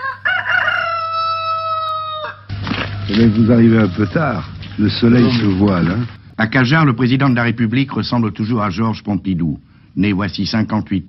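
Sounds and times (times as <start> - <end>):
rooster crowing in rural Cantal France: 0.0 - 5.4
speech: 3.1 - 11.0.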